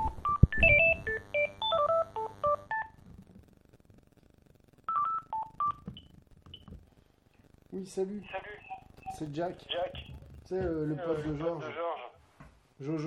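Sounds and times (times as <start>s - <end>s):
telephone ringing with short electronic beeps: 0.0s - 3.0s, 4.9s - 6.0s
speech: 7.8s - 8.4s, 9.1s - 11.9s, 12.8s - 13.0s.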